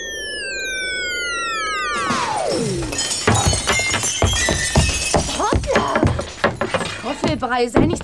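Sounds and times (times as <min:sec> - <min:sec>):
long falling whistle: 0:00.0 - 0:03.0
window pane shattering at a school: 0:02.5 - 0:08.0
scattered clinks and clatter of broken glass: 0:02.8 - 0:08.0
speech: 0:07.3 - 0:08.0.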